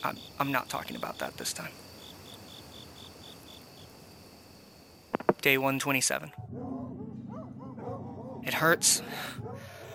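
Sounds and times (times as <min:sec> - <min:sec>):
speech: 0:00.0 - 0:01.9, 0:05.4 - 0:06.7, 0:08.4 - 0:09.7
dogs barking and whining at a door behind a barrier: 0:06.4 - 0:09.9.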